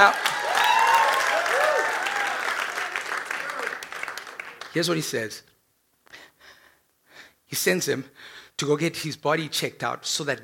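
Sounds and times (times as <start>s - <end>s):
speech: 0.0s - 0.3s, 4.7s - 5.5s, 7.5s - 10.4s
audience clapping during a sermon: 0.0s - 5.2s.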